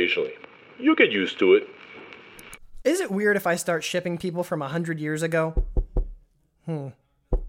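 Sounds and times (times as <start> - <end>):
speech: 0.0 - 1.8, 2.8 - 5.7, 6.7 - 7.0
sharp solid knocks on a door: 5.6 - 6.2.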